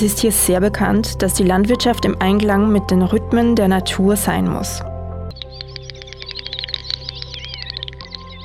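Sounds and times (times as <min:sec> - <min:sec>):
speech: 0:00.0 - 0:04.9
small bird chirping, presumably a bullfinch: 0:05.3 - 0:08.4.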